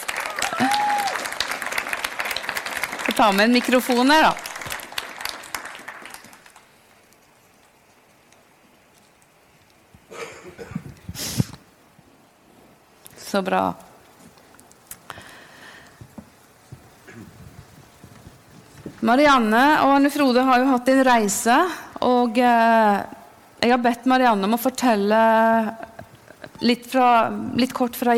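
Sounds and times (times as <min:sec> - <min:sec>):
crowd applauding loudly: 0:00.0 - 0:06.7
speech: 0:03.2 - 0:04.4, 0:13.3 - 0:13.8, 0:19.1 - 0:25.7, 0:26.6 - 0:28.1.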